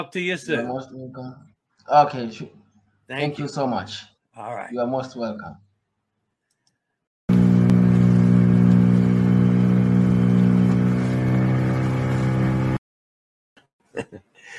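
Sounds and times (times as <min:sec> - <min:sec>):
speech: 0:00.0 - 0:05.6, 0:14.0 - 0:14.5
boat engine speeding across water: 0:07.3 - 0:12.8
laughter: 0:14.0 - 0:14.5.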